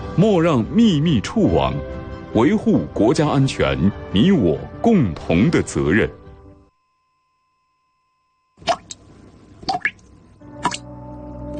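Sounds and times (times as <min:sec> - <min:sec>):
speech: 0:00.2 - 0:06.2
water dripping from a leaky faucet into a basin: 0:08.6 - 0:10.9.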